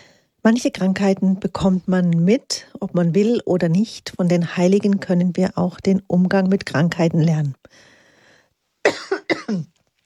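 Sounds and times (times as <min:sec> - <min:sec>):
speech: 0:00.4 - 0:07.9, 0:08.9 - 0:09.7
harsh throaty coughs from a person with a scratchy throat: 0:08.8 - 0:09.8.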